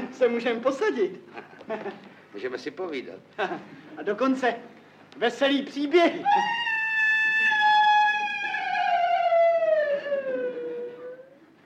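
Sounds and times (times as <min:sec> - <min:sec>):
speech: 0:00.2 - 0:06.6
wolf howling in a city: 0:06.3 - 0:11.4.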